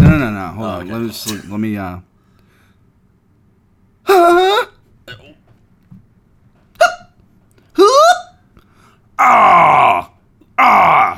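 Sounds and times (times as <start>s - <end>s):
speech: 0.3s - 2.1s, 4.1s - 4.7s, 9.2s - 11.0s
loud forced burps: 5.1s - 5.5s.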